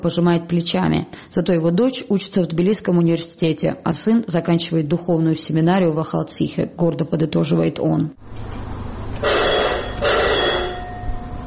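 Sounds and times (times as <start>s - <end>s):
speech: 0.0s - 8.6s
low steady hum: 0.0s - 11.4s
electric bell signalling a mine cable car ready to depart: 9.2s - 11.4s.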